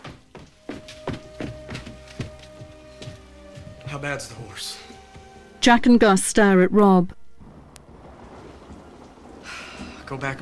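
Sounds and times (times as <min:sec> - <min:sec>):
footsteps running down wooden stairs inside a house: 0:00.0 - 0:03.8
speech: 0:03.9 - 0:04.9, 0:05.6 - 0:07.2, 0:10.1 - 0:10.3.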